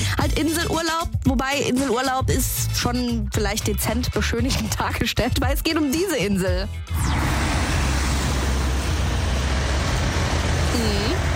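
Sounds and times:
speech: 0.4s - 7.2s
road traffic of cars and heavier vehicles rumbling at a roundabout traffic island: 6.9s - 11.3s.

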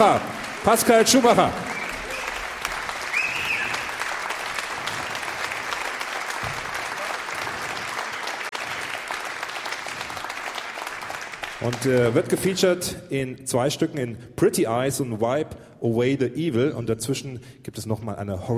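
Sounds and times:
speech: 0.0s - 1.7s, 11.6s - 18.5s
audience applause for a vibraphonist on stage at a jazz concert: 0.0s - 12.4s.

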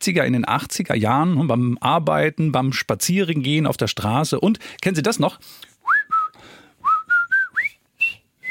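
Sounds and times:
speech: 0.0s - 5.7s
person whistling a lively tune: 5.8s - 8.4s.

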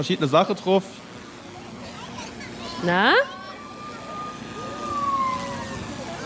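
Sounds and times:
speech: 0.0s - 1.1s, 2.8s - 3.4s
emergency vehicle siren played from drone speaker: 2.8s - 6.2s.

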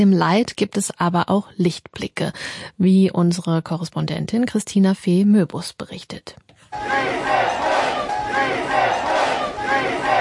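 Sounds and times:
speech: 0.0s - 9.0s
rescue workers and relatives cheering and shouting at night in Cali after an earthquake rescue: 6.8s - 10.1s.

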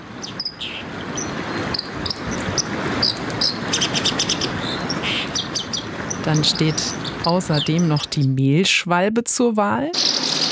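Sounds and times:
white-throated dipper singing: 0.2s - 8.4s
speech: 6.3s - 10.2s.

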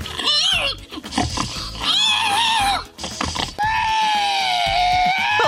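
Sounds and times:
man imitating pig grunts and squeals at a pig-imitation contest in Estonia: 0.1s - 0.8s, 1.7s - 3.0s, 3.6s - 5.4s.

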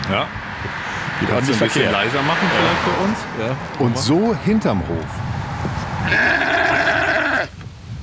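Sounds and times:
speech: 0.1s - 5.3s, 6.1s - 6.7s
sheep bleating behind a small vegetable farm in Bubach-Kalmesweiler: 6.1s - 7.5s.

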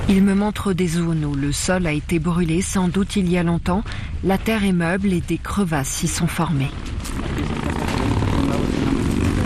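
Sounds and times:
speech: 0.1s - 7.6s
motorcycles passing by: 7.0s - 9.4s.

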